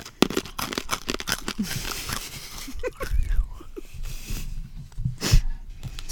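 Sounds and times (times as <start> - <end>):
bag of Turkish pepper salty licorice candy crinkling: 0.0 - 3.8
chewing salty licorice: 0.0 - 4.4
speech: 1.6 - 1.9
laughter: 1.6 - 4.4.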